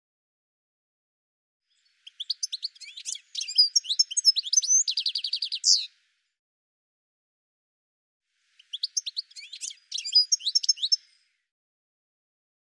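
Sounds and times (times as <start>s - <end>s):
bird singing high rapid chirps and trills: 1.7s - 5.9s, 8.6s - 11.3s.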